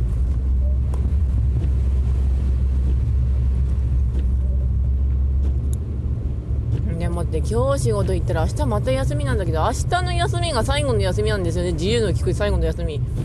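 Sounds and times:
car driving along a snow-covered road: 0:00.0 - 0:13.2
speech: 0:07.3 - 0:13.2.

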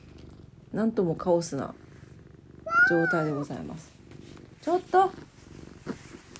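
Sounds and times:
cat purring: 0:00.0 - 0:06.3
speech: 0:00.7 - 0:01.8, 0:02.9 - 0:04.0, 0:04.6 - 0:05.3
woman speaking softly: 0:00.7 - 0:01.8, 0:02.7 - 0:03.9, 0:04.6 - 0:05.3
cat meowing: 0:02.6 - 0:03.6.

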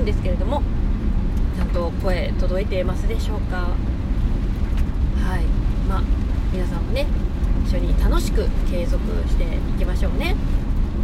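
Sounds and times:
speech: 0:00.0 - 0:01.0, 0:01.6 - 0:04.0, 0:05.2 - 0:10.6
heavy rain pattering: 0:00.0 - 0:11.0.

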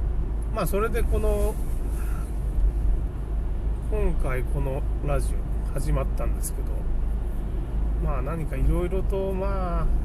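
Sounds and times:
road and engine rumble inside a car driven in a traffic jam: 0:00.0 - 0:10.0
speech: 0:00.6 - 0:01.8, 0:03.9 - 0:07.0, 0:08.0 - 0:10.0.

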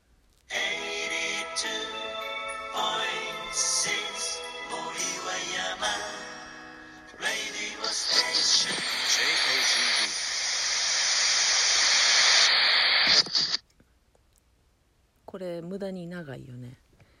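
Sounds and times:
static hiss: 0:00.0 - 0:13.6
bright tonal anime opening background music: 0:00.5 - 0:08.6
speech: 0:03.5 - 0:04.0, 0:15.4 - 0:16.8.

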